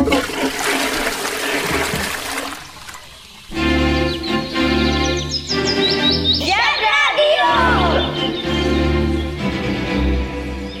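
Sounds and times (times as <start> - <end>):
toilet flushing: 0.0 - 3.6
high chirpy whistles: 3.3 - 9.6.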